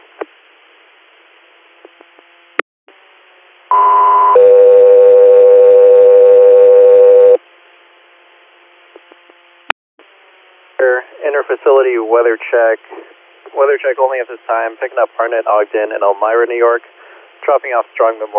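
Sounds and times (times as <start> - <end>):
two-tone radio dispatch paging alert tones: 3.7 - 7.4
radio static: 10.8 - 16.8
speech: 11.5 - 13.0, 13.6 - 18.3.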